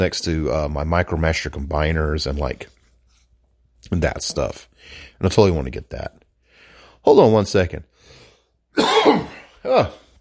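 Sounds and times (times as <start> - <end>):
speech: 0.0 - 2.8, 3.8 - 6.2, 7.0 - 8.2, 8.8 - 10.0
person coughing harshly: 8.8 - 10.1.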